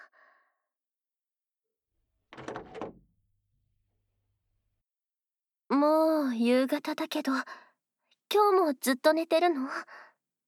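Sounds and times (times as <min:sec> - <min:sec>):
door opening with faint short wooden clunk and soft rattle in a quiet home: 0:02.4 - 0:03.2
speech: 0:05.8 - 0:07.7, 0:08.3 - 0:10.0.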